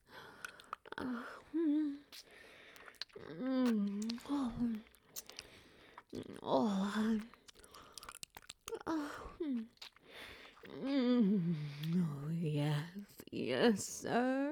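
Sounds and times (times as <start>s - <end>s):
wet sucking and licking mouth sounds: 0.0s - 11.0s, 11.6s - 12.1s
soft wordless vocalizations: 0.0s - 14.1s.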